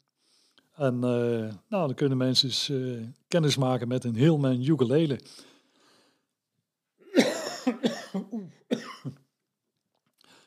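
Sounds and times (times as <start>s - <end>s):
speech: 0.8s - 5.5s
harsh rasping coughing fit: 7.0s - 9.2s.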